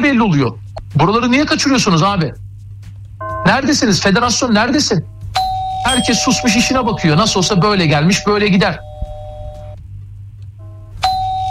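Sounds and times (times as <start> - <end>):
speech: 0.1 - 2.4, 3.4 - 5.1, 5.8 - 8.9
low steady hum: 2.3 - 11.4
electronic doorbell chime: 5.4 - 9.8, 11.0 - 11.4.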